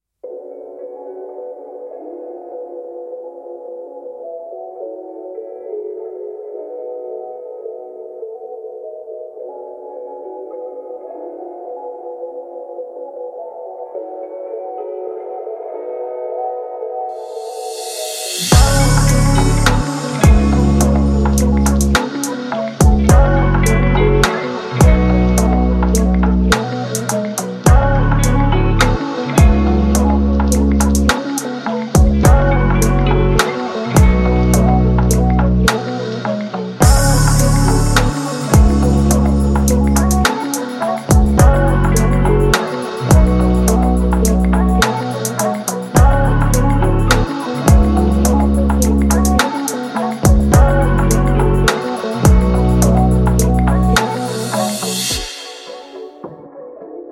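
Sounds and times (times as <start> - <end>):
rap beat: 17.9 - 56.4.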